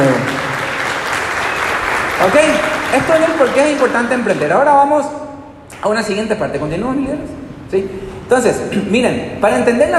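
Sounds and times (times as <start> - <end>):
audience applause: 0.0 - 4.7
speech: 2.2 - 5.2, 5.8 - 9.9.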